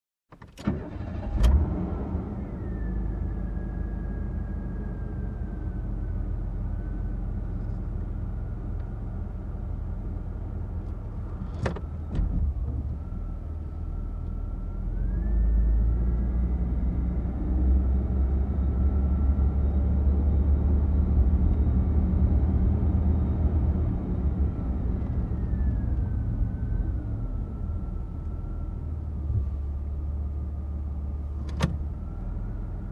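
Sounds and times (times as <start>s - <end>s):
car ride: 0.3s - 32.9s.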